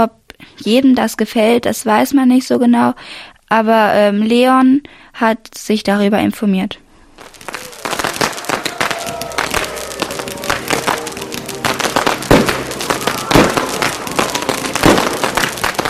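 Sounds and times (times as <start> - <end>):
speech: 0.0 - 6.8
New Year's Eve fireworks and firecrackers exploding: 7.1 - 15.8
faint crowd murmur: 7.6 - 15.7.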